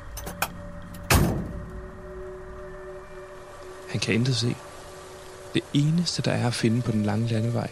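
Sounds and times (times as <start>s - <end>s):
truck door clicking open: 0.1s - 1.8s
truck door slamming shut with a heavy thud: 0.3s - 1.7s
speech: 3.9s - 4.7s, 5.5s - 7.6s.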